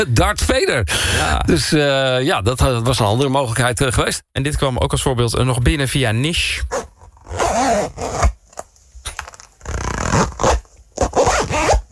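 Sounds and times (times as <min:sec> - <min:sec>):
speech: 0:00.0 - 0:06.8
zippers being closed: 0:06.7 - 0:11.8.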